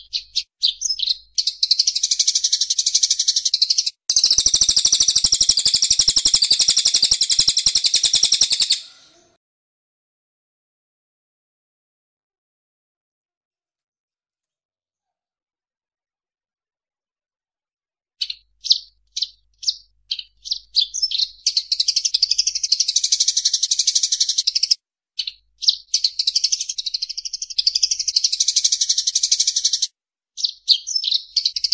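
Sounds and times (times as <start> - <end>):
bird song of high sharp chirps: 0.0 - 9.3, 18.2 - 31.7.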